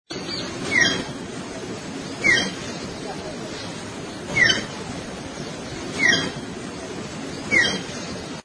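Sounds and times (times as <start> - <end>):
magpie call: 0.7 - 1.2, 2.2 - 2.6, 4.3 - 4.7, 5.9 - 6.4, 7.5 - 8.0.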